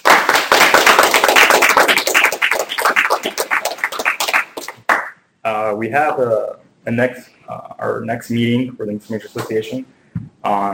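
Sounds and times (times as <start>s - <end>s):
audience applauding panelists: 0.0s - 5.1s
speech: 5.4s - 10.7s.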